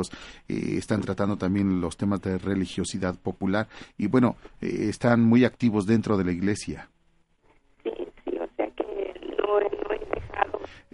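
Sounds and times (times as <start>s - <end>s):
speech: 0.0s - 6.9s
voice over a thin tinny phone line: 7.9s - 10.6s.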